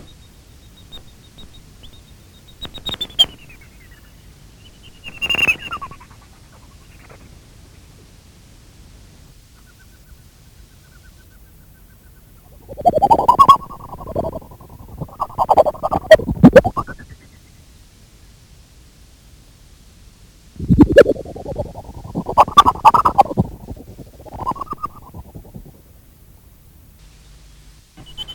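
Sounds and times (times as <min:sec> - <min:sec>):
greater horseshoe bat calls: 0:02.6 - 0:07.3, 0:12.4 - 0:17.3, 0:20.6 - 0:25.9.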